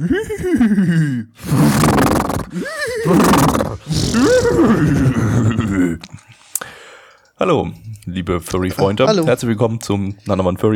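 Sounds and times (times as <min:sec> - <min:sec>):
laughter: 0:00.0 - 0:01.3, 0:02.5 - 0:06.0
speech: 0:00.0 - 0:01.5, 0:08.3 - 0:10.7
horse whinnying: 0:01.4 - 0:05.0.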